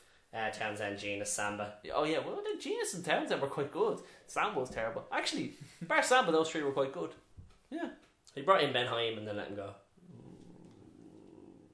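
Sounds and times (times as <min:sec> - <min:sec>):
speech: 0:00.3 - 0:09.8
low rumbling growl: 0:10.0 - 0:11.7.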